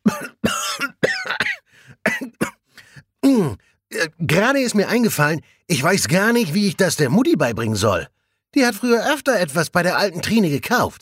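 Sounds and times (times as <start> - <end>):
person choking and coughing with gasping: 0.0 - 4.1
speech: 4.1 - 11.0.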